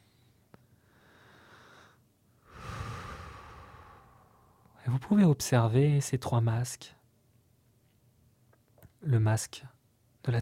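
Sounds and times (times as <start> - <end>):
deep breathing during a guided relaxation exercise: 0.8 - 4.8
speech: 5.0 - 7.0, 9.0 - 10.3.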